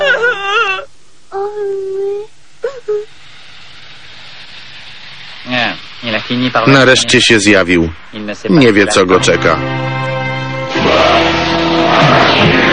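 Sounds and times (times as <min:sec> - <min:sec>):
woman crying in an animated series: 0:00.0 - 0:00.9
faint hiss: 0:00.0 - 0:11.7
speech: 0:06.3 - 0:09.8.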